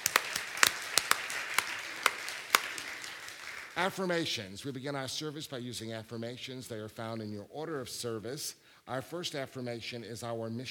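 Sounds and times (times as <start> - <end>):
audience applauding with hand claps: 0.0 - 4.0
speech: 3.8 - 10.6.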